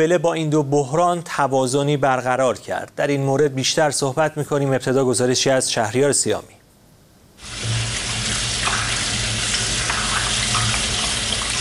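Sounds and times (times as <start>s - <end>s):
speech: 0.0s - 6.6s
water running from an open tap during a handwashing demonstration: 7.4s - 11.6s.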